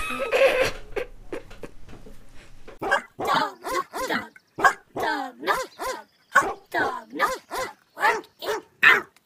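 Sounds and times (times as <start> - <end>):
rustling: 0.7 - 2.8
dog barking deeply: 2.8 - 9.1.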